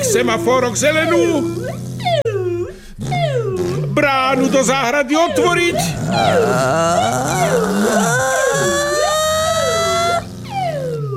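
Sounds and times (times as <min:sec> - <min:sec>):
voice imitating an ambulance siren: 0:00.0 - 0:11.1
speech: 0:00.1 - 0:02.2, 0:04.0 - 0:08.3.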